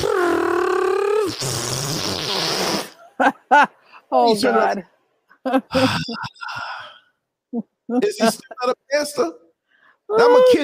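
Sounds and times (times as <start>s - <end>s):
voice imitating a pastor farting: 0.0s - 3.0s
speech: 3.2s - 6.6s, 7.5s - 9.4s, 10.1s - 10.6s.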